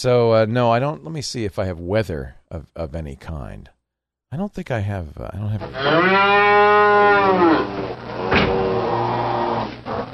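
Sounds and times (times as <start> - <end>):
speech: 0.0 - 8.5
cows mooing: 5.6 - 9.8.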